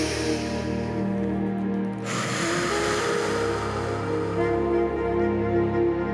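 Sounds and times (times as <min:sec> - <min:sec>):
slow breathing in through nose and out through mouth: 0:00.0 - 0:01.2, 0:02.0 - 0:05.1
soft sustained musical drone: 0:00.0 - 0:06.1.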